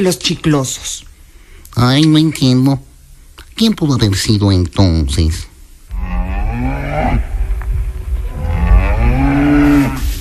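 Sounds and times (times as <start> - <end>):
speech: 0.0 - 1.1, 1.8 - 2.9, 3.6 - 5.5, 6.5 - 7.3
cow mooing: 5.9 - 7.4, 8.2 - 10.2.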